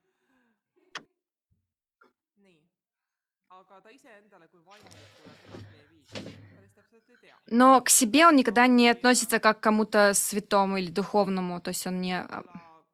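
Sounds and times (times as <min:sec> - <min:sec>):
speech: 0:03.5 - 0:12.7
door shutting with a sharp solid thud: 0:04.9 - 0:06.6
knock-like impact: 0:04.9 - 0:06.6.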